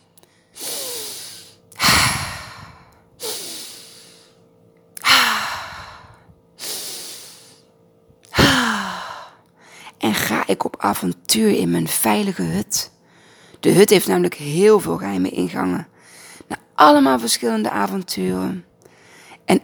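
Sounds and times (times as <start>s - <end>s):
deep breaths in and out: 0.2s - 4.4s, 5.0s - 7.7s, 8.4s - 10.0s, 13.0s - 13.6s, 18.8s - 19.4s
speech: 10.1s - 12.9s, 13.6s - 15.9s, 16.8s - 18.7s, 19.5s - 19.6s.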